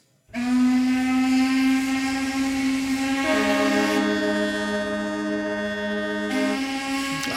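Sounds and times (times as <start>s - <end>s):
horns of cargo ships, boats and ferries blaring in a harbour: 0.3s - 7.3s.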